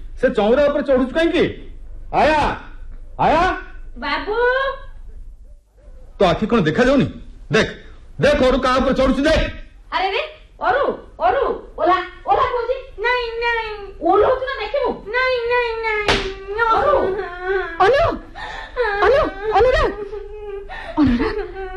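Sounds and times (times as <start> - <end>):
speech: 0.2 - 4.8, 6.2 - 21.7
young boy crying: 16.4 - 21.7.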